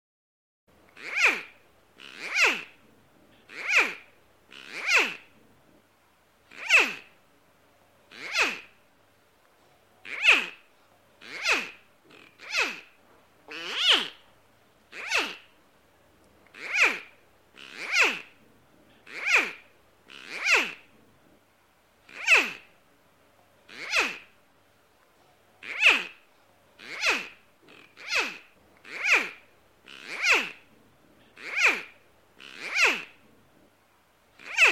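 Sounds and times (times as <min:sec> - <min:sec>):
crocodile sound: 0:01.0 - 0:05.4, 0:08.1 - 0:08.8, 0:10.0 - 0:14.3, 0:14.9 - 0:15.6, 0:16.5 - 0:18.4, 0:19.0 - 0:21.0, 0:22.1 - 0:22.7, 0:23.7 - 0:24.4, 0:25.6 - 0:33.4, 0:34.4 - 0:34.7.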